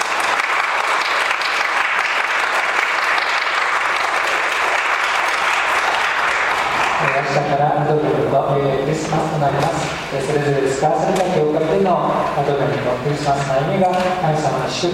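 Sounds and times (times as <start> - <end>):
large audience applause: 0.0 - 7.5
speech: 8.5 - 14.9.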